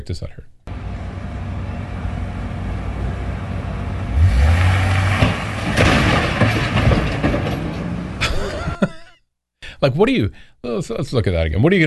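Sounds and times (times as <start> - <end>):
speech: 0.0 - 0.6, 9.8 - 11.8
heavy moving truck rumbling and revving: 0.7 - 8.3
moving truck crashing with loud crunching: 3.4 - 8.9
debris clattering: 4.2 - 8.9
laughter: 8.2 - 9.2.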